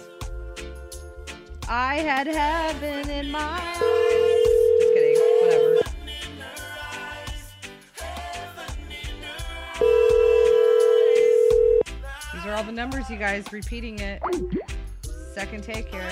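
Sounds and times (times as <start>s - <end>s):
music: 0.0s - 16.1s
speech: 1.7s - 4.2s, 12.6s - 14.8s, 15.4s - 16.1s
loud electronic telephone ringing: 3.8s - 5.9s, 9.8s - 11.8s.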